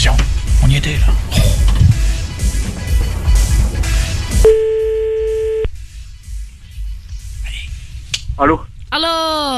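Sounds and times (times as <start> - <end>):
noisy rumbling noise: 0.0 - 9.5
speech: 0.8 - 1.4, 8.4 - 9.1
electronic telephone ringing tone while calling someone back: 4.5 - 5.7.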